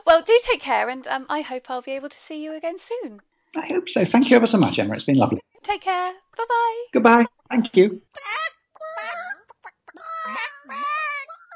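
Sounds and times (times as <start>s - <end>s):
speech: 0.1s - 8.4s
several chickens clucking and squawking: 8.2s - 11.5s.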